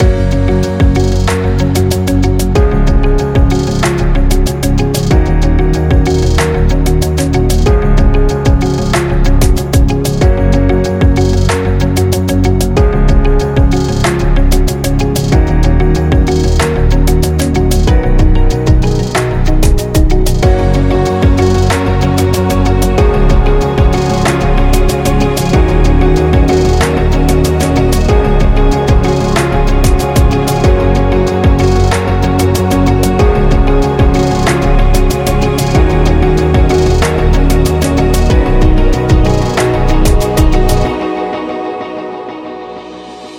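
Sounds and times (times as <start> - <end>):
positive corporate background music loop: 0.0 - 43.3.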